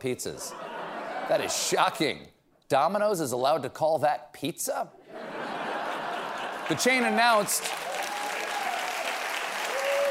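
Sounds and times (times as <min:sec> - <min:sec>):
speech: 0:00.0 - 0:00.7, 0:01.3 - 0:05.0, 0:06.7 - 0:07.8
laughter: 0:00.3 - 0:02.0, 0:05.0 - 0:07.8
studio audience applause: 0:06.0 - 0:10.0.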